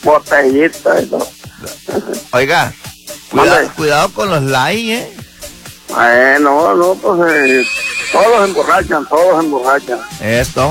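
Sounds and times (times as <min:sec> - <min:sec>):
speech: 0:00.0 - 0:05.2, 0:06.0 - 0:10.6
wild horse neighing: 0:07.2 - 0:09.1.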